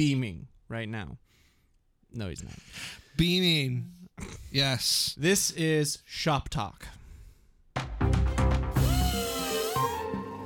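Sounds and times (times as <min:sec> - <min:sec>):
speech: 0:00.0 - 0:01.4, 0:02.1 - 0:07.0
power drill whirring and grinding: 0:08.8 - 0:10.1.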